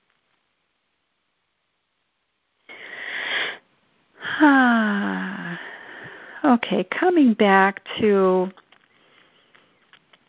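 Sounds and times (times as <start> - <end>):
person breathing in and out: 2.7 - 3.6, 4.2 - 6.4
speech: 4.4 - 5.0, 6.6 - 8.6.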